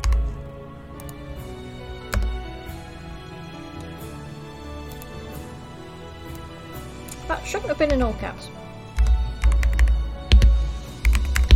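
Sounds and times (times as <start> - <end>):
typing on a computer keyboard: 0.0 - 0.3, 9.0 - 11.5
speech: 7.3 - 8.6.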